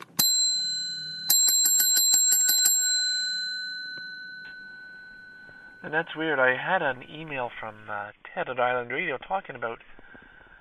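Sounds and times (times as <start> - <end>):
bell ringing: 0.0 - 6.6
speech: 5.9 - 10.0.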